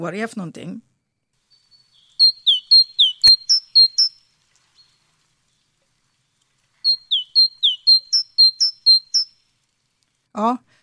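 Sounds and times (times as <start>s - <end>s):
speech: 0.0s - 0.9s, 10.4s - 10.6s
great tit singing bright rhythmic two-note phrases: 1.5s - 5.1s, 6.8s - 9.4s.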